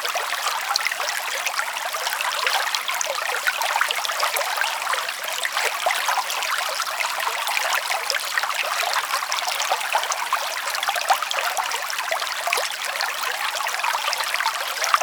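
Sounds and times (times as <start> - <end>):
water ambience: 0.0 - 15.0.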